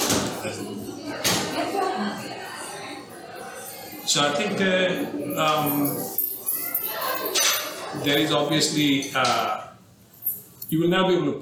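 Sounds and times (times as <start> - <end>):
door closing: 0.0 - 3.4
laughter: 0.0 - 9.6
voices murmuring: 0.0 - 10.7
speech: 0.1 - 1.3, 4.1 - 6.2, 7.2 - 9.6, 10.7 - 11.4.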